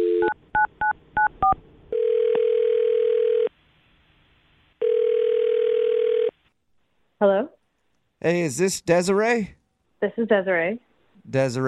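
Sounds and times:
steady telephone tone: 0.0s - 3.5s, 4.8s - 6.4s
speech: 7.2s - 7.5s, 8.2s - 11.6s.

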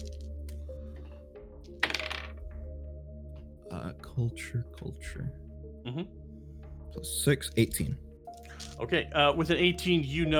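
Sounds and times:
dice rattling and rolling from an eyeball-shaped dice bag: 1.7s - 2.4s
speech: 4.2s - 6.2s, 6.9s - 8.1s, 8.7s - 10.3s.

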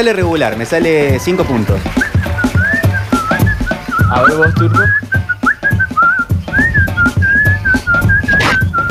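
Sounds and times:
speech: 0.0s - 2.2s, 4.1s - 5.2s
music with rhythmic accompaniment: 0.0s - 8.8s
person whistling a wavering melody: 1.9s - 8.8s.

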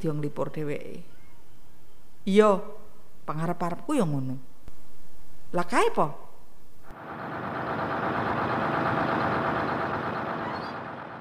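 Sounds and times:
speech: 0.0s - 1.2s, 2.2s - 4.5s, 5.5s - 6.2s
heavy bus engine approaching and idling: 6.9s - 11.1s.

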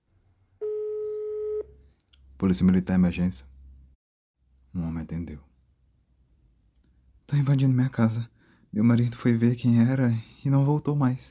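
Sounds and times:
phone ringback tone after dialing police emergency number: 0.6s - 1.7s
speech: 2.4s - 3.5s, 4.8s - 5.5s, 7.3s - 11.2s.

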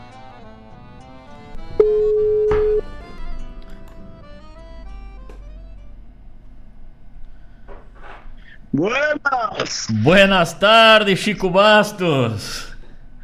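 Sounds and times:
quiet telephone line noise: 0.0s - 12.2s
telephone line tone as a call is placed: 1.7s - 3.2s
speech: 8.8s - 12.7s.

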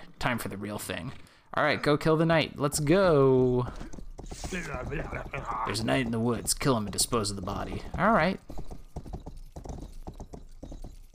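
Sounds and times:
speech: 0.2s - 8.6s
horse hooves clip-clopping while riding: 3.1s - 11.1s.

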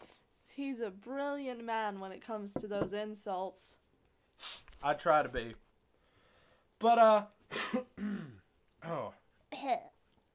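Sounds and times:
speech: 0.6s - 3.8s, 4.8s - 5.6s, 6.8s - 7.9s
throat clearing: 7.5s - 8.4s.

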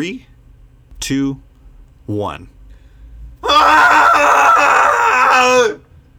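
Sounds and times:
speech: 0.0s - 0.3s, 1.0s - 1.5s, 2.1s - 2.6s, 3.4s - 4.1s, 5.4s - 5.8s
group screaming together: 3.4s - 5.8s.

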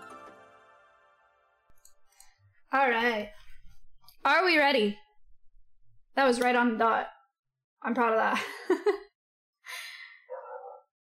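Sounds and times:
speech: 2.7s - 3.4s, 4.2s - 5.0s, 6.2s - 7.2s, 7.8s - 9.0s
dog barking: 10.3s - 10.9s.

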